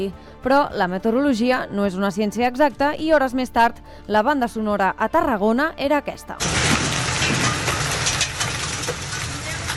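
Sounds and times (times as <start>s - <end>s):
speech: 0.0s - 6.6s
hail impacts in a heavy storm in Tarragona, Catalonia: 6.4s - 9.7s
torrential rain in a heavy storm in Tarragona, Catalonia: 6.4s - 9.7s.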